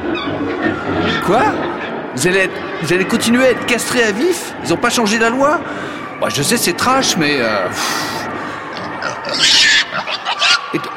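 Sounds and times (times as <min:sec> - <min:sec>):
speech: 0:00.9 - 0:08.2
large pig grunting, snorting and squealing: 0:08.8 - 0:10.8.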